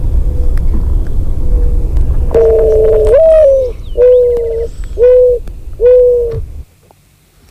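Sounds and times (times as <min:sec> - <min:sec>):
low rumble: 0:00.0 - 0:06.8
Eurasian collared dove cooing: 0:01.4 - 0:06.6.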